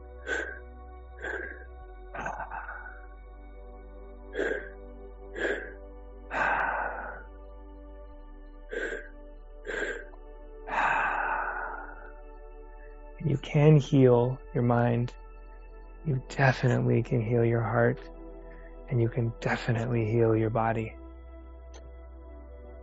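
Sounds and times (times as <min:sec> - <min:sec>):
deep breaths during a guided breathing exercise: 0:00.0 - 0:03.2, 0:04.3 - 0:07.4, 0:08.7 - 0:13.1
faint tonal hum: 0:00.0 - 0:22.8
speech: 0:13.5 - 0:15.2, 0:16.0 - 0:18.2, 0:18.9 - 0:21.0.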